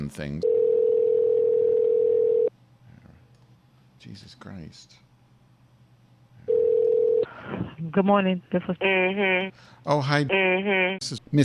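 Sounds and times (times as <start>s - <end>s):
speech: 0.1s - 0.6s, 4.0s - 5.1s, 7.5s - 11.4s
telephone ringing tone on a call: 0.4s - 2.5s, 6.5s - 7.3s.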